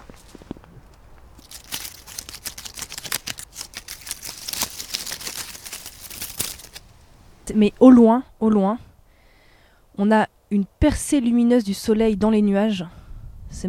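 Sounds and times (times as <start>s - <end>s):
dry dead leaves crunching underfoot: 0.0s - 7.8s
speech: 7.5s - 8.9s, 10.0s - 13.6s.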